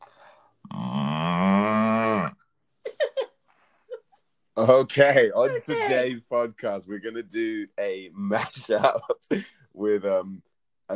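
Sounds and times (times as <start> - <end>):
person imitating a cow moo: 0.6 - 2.4
person laughing in short bursts: 2.9 - 3.3
speech: 4.6 - 10.9.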